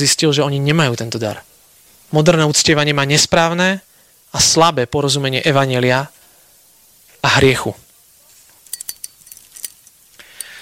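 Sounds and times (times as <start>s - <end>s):
speech: 0.0s - 1.5s, 2.1s - 6.2s, 7.2s - 7.8s
bunch of keys jingling: 8.6s - 10.6s.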